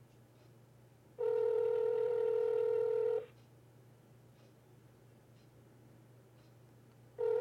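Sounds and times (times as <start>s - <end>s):
outgoing phone call ringback tone: 1.2s - 3.3s, 7.2s - 7.3s.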